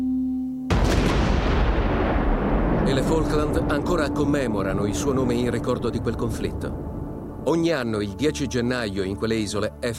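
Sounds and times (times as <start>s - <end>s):
steady low hum: 0.0s - 7.8s
cannon fire from the Falklands War: 0.7s - 7.6s
speech: 2.9s - 9.9s.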